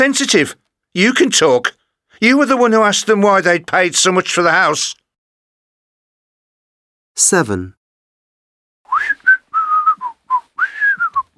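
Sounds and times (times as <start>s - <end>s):
speech: 0.0s - 5.0s, 7.2s - 7.8s
person whistling a short lilting tune: 8.9s - 11.3s.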